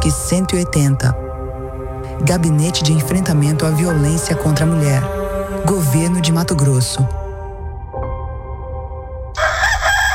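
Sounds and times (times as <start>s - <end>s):
speech: 0.0s - 1.2s, 2.2s - 7.2s
low rumble: 0.0s - 8.2s
rooster crowing: 9.4s - 10.1s.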